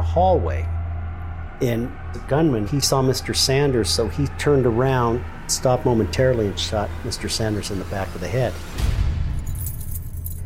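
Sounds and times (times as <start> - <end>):
low rumbling background: 0.0 - 10.4
speech: 0.2 - 0.8, 1.6 - 8.9
large ring of building keys jangling: 9.3 - 10.4.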